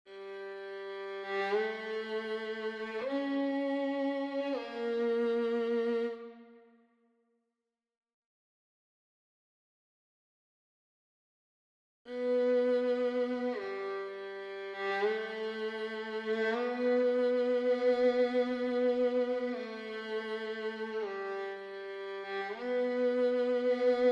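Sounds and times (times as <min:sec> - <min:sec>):
violin: 0:00.0 - 0:06.8, 0:12.1 - 0:24.1.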